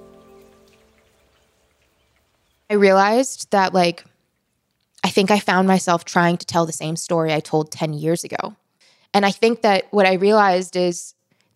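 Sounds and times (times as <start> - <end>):
quiet rain pattering on a surface on a foggy morning: 0.0 - 5.6
speech: 2.7 - 4.1, 5.2 - 11.5.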